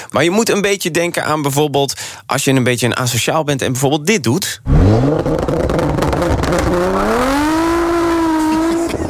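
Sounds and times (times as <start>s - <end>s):
speech: 0.0s - 6.0s
car engine revving loudly: 4.7s - 9.0s.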